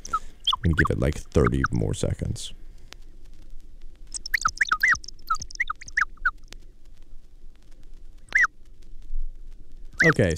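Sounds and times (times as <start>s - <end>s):
birds chirping: 0.0s - 2.6s, 4.1s - 6.8s, 8.2s - 8.5s, 10.0s - 10.3s
low rumble: 0.0s - 10.3s
speech: 0.6s - 2.6s, 10.0s - 10.3s.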